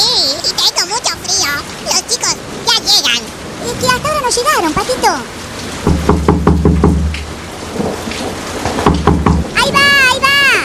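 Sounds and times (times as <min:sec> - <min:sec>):
steady heavy rain hissing in a thunderstorm: 0:00.0 - 0:10.6
loud rumble of thunder in pulsing waves: 0:02.4 - 0:10.6
speech: 0:04.2 - 0:05.4.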